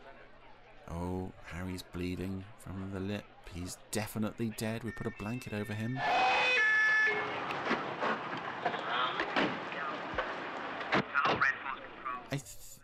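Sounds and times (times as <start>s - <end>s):
speech: 0.9s - 6.4s
indistinct voices: 4.4s - 12.4s
police car siren wailing: 6.0s - 10.5s.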